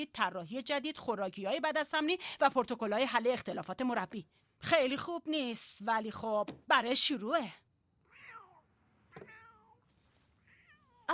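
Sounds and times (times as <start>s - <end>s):
speech: 0.0s - 7.6s
cat meowing: 8.1s - 9.8s, 10.4s - 11.1s.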